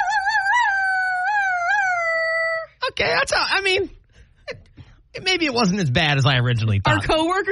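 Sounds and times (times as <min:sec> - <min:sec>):
person imitating a wolf howl: 0:00.0 - 0:02.8
speech: 0:03.0 - 0:07.4.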